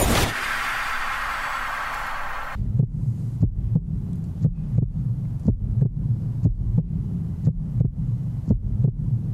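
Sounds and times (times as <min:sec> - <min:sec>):
loud hiss: 0:00.0 - 0:02.6
low murky music with throbbing bass pulse: 0:02.6 - 0:09.3.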